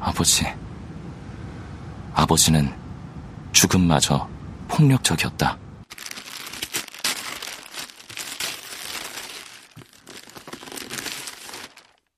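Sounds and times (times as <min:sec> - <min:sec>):
speech: 0:00.1 - 0:00.6, 0:02.2 - 0:02.8, 0:03.6 - 0:05.6
plastic wrap of a smoked sandwich being torn open: 0:05.9 - 0:12.1.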